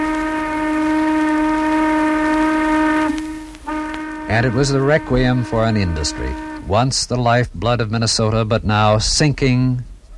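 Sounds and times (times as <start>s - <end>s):
long steady blast of a sawmill steam whistle: 0.0s - 7.0s
speech: 4.4s - 9.9s.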